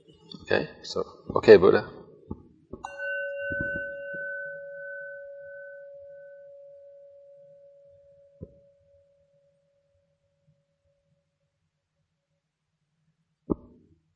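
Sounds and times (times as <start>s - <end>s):
speech: 0.5s - 2.0s
single bell strike with clear sustained tone: 2.8s - 8.4s.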